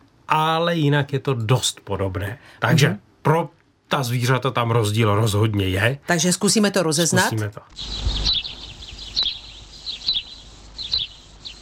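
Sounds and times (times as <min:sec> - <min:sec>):
speech: 0:00.4 - 0:08.4
sparrow chirping: 0:07.7 - 0:11.5.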